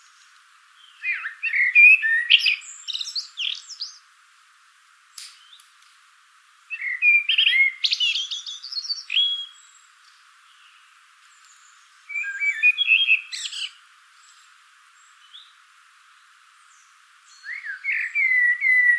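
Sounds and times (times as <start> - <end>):
common blackbird Turdus merula singing: 0.8 - 4.0, 6.7 - 14.4, 16.6 - 18.9.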